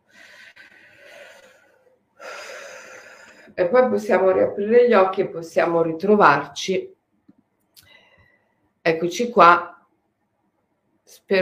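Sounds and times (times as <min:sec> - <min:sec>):
deep inhale: 0:00.0 - 0:03.6
speech: 0:03.6 - 0:07.0, 0:08.8 - 0:09.7, 0:11.1 - 0:11.4.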